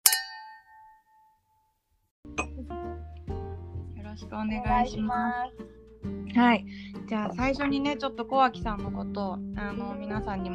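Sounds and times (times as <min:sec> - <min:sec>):
glasses of water infused with melissa herb clinking in a toast: 0:00.0 - 0:01.3
speech: 0:04.2 - 0:10.5.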